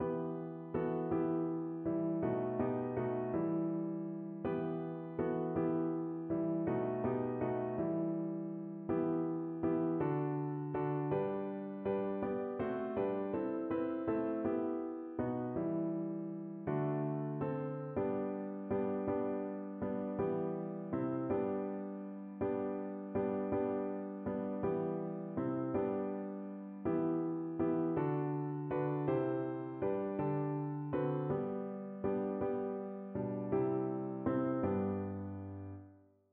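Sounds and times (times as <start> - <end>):
piano playing a Christmas carol: 0.0 - 36.0.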